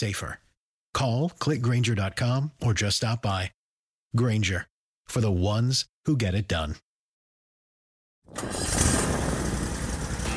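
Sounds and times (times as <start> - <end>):
speech: 0.0 - 0.4, 1.0 - 6.8, 8.3 - 8.8
Toro Z-Master 4000 zero-turn mower engine starting and idling: 8.3 - 10.3.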